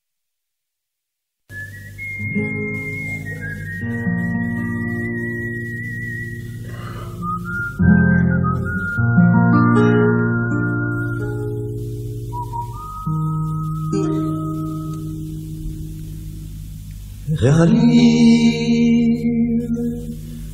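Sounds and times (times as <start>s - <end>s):
Hebrew folk tune played on flute: 1.5s - 16.2s
steady warm instrumental accompaniment: 1.5s - 20.5s
speech: 17.4s - 18.6s.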